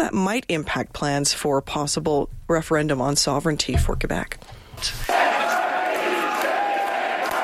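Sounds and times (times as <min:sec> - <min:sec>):
speech: 0:00.0 - 0:05.2
crowd chanting slogan at party headquarters: 0:05.0 - 0:07.4.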